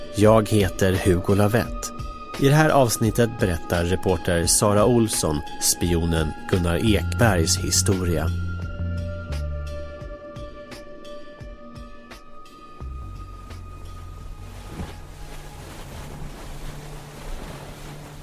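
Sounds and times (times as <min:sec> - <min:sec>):
speech: 0:00.2 - 0:08.5
rubber dinghy hull slapping over choppy sea waves: 0:12.9 - 0:18.2
small motorboat engine droning: 0:12.9 - 0:18.2
wind noise on the microphone: 0:13.0 - 0:18.2
rushing water: 0:13.2 - 0:18.2.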